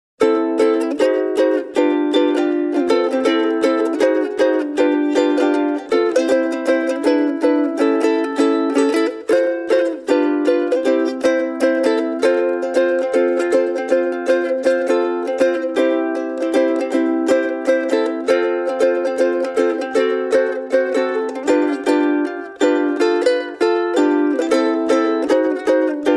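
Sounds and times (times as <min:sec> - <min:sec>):
ukulele solo: 0:00.2 - 0:26.1.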